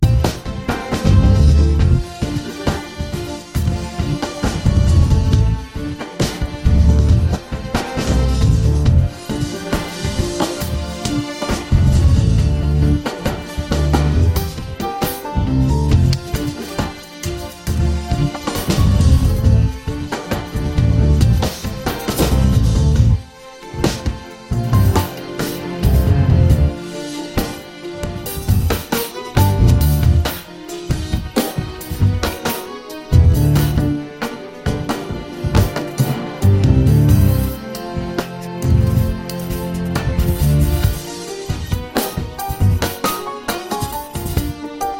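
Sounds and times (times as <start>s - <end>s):
bass: 0.0s - 0.4s, 1.0s - 2.1s, 3.6s - 5.7s, 6.5s - 7.4s, 8.0s - 9.2s, 11.6s - 14.6s, 15.3s - 16.5s, 17.7s - 19.9s, 20.6s - 23.2s, 24.5s - 26.8s, 29.4s - 30.3s, 32.0s - 32.4s, 33.1s - 34.0s, 35.4s - 37.6s, 38.5s - 41.0s, 42.5s - 43.0s
drum kit: 0.0s - 44.9s
strings: 0.0s - 44.9s.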